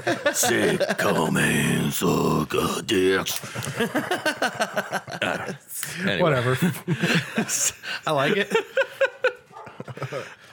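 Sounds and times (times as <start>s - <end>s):
laughter: 0.0s - 2.7s, 3.3s - 10.5s
speech: 0.0s - 9.0s, 10.0s - 10.4s
dogs barking excitedly: 9.2s - 9.9s.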